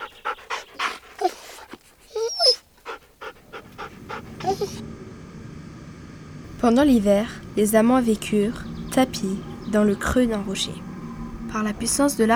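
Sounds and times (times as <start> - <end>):
hunting dog whimpering and yelping in a wood: 0.0 - 4.8
hunting dog panting in a wood: 0.0 - 12.3
steady rustling: 0.0 - 12.3
speech: 6.6 - 10.9, 11.5 - 12.3.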